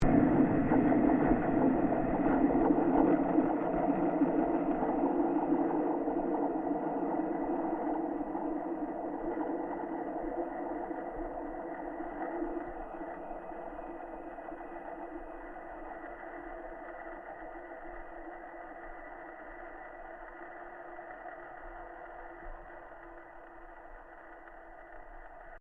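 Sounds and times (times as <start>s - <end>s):
tram vibrations through rails via contact mic: 0.0s - 18.4s.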